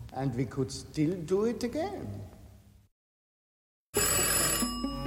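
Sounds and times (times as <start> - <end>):
speech: 0.2 - 2.4
telephone bell ringing: 4.0 - 5.0.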